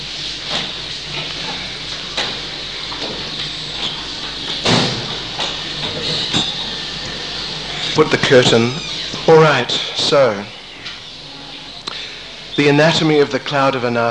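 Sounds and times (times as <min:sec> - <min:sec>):
door being opened: 0:00.5 - 0:11.0
speech: 0:08.0 - 0:10.6, 0:12.6 - 0:14.0.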